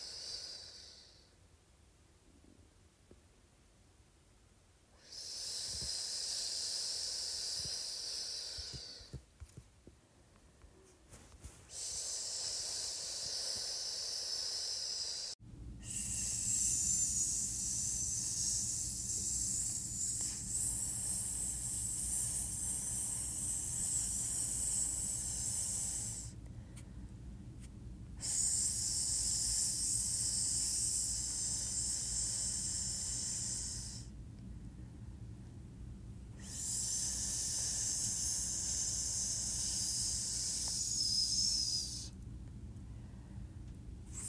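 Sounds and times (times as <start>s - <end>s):
low steady hum: 0.0s - 44.2s
bright sssss hissing: 5.0s - 9.2s, 11.6s - 26.4s, 28.2s - 34.1s, 36.4s - 42.2s.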